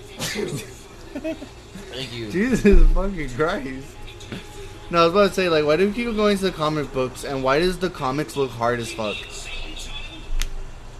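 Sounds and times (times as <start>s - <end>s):
person sneezing: 0.2s - 0.7s
speech: 0.4s - 9.4s.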